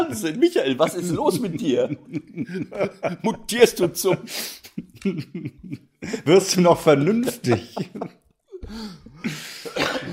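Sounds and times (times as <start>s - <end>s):
laughter: 0.0s - 8.3s
speech: 0.1s - 10.1s
person coughing harshly: 9.6s - 10.1s.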